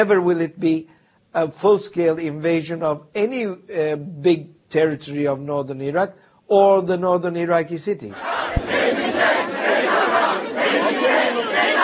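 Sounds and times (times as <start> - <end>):
speech: 0.0 - 9.0
protest crowd chanting and shouting: 8.1 - 11.8.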